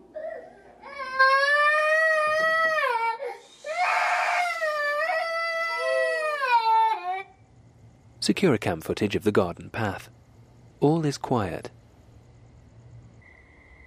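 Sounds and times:
young boy crying while standing up in his crib: 0:00.2 - 0:07.4
speech: 0:08.2 - 0:10.2, 0:10.8 - 0:11.8.

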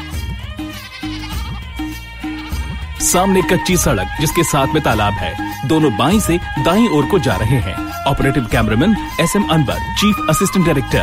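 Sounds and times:
goats bleating as a child chases them: 0:00.0 - 0:03.4
speech: 0:03.0 - 0:11.0.

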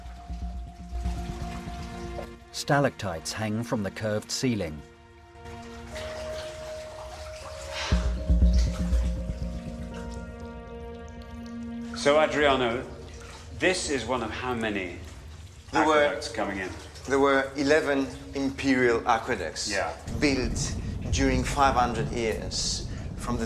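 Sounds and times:
people wading through waist-deep cold water in a narrow aqueduct tunnel: 0:00.0 - 0:02.5, 0:04.9 - 0:21.0
man narrating: 0:02.5 - 0:04.9, 0:11.9 - 0:23.4
speech: 0:02.6 - 0:04.9, 0:12.0 - 0:13.0, 0:13.6 - 0:15.1, 0:15.7 - 0:23.4.

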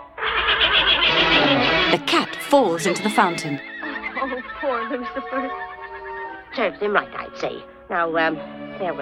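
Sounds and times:
horse neighing: 0:00.2 - 0:01.9, 0:03.6 - 0:06.4
speech: 0:02.5 - 0:05.7, 0:06.6 - 0:09.0.

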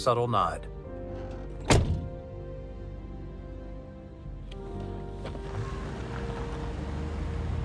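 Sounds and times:
car door shutting as someone gets out: 0:01.1 - 0:02.2, 0:04.5 - 0:06.8
car engine idling: 0:04.6 - 0:07.6.

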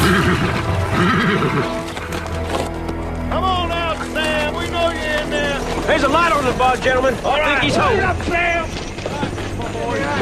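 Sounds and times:
unsettled horse whinnying in a stall: 0:00.0 - 0:02.2
horse snorting in a stall: 0:00.0 - 0:02.6
horse shuffling in an enclosed space: 0:00.0 - 0:10.1
speech: 0:01.5 - 0:01.9, 0:05.9 - 0:08.8.

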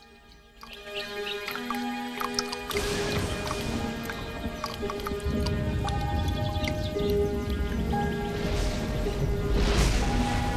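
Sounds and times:
thunderstorm rain: 0:00.0 - 0:10.5
thunderstorm rumble: 0:02.8 - 0:10.5.

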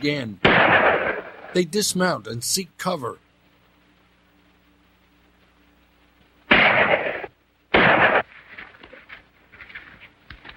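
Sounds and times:
speech: 0:00.0 - 0:03.2
pistol shots in a western gunfight along a ravine: 0:00.4 - 0:01.6, 0:06.5 - 0:08.3.

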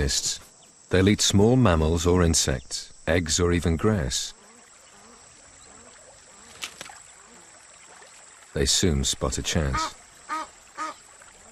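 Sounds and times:
speech: 0:00.0 - 0:04.4, 0:08.6 - 0:10.0
faint watery hiss: 0:00.0 - 0:11.5
Egyptian geese honking: 0:09.7 - 0:11.0.

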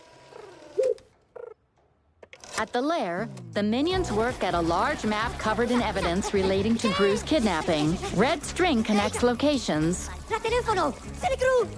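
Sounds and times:
pigeon cooing as it dozes off: 0:00.3 - 0:01.6
speech: 0:02.6 - 0:11.7
laughter: 0:04.0 - 0:10.0.

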